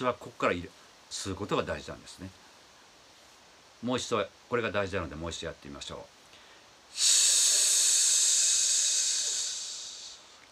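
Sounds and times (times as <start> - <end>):
speech: 0.0 - 2.4, 3.8 - 6.2, 7.0 - 7.2
long deep breath in through the nose during a breathing exercise: 6.3 - 10.4.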